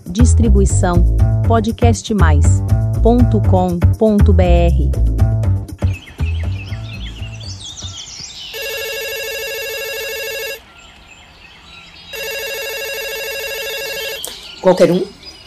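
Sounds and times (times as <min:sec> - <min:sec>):
speech: 0:00.2 - 0:05.3, 0:14.7 - 0:15.2
busy chirping tonal sounds: 0:05.8 - 0:15.4
electronic telephone ringing: 0:08.5 - 0:10.6, 0:12.1 - 0:14.3.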